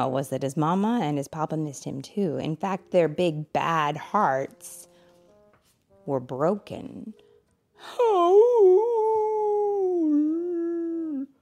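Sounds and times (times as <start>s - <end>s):
speech: 0.0s - 4.9s, 6.1s - 7.2s, 7.8s - 8.9s
person's voice imitating a wolf howl: 7.9s - 11.4s.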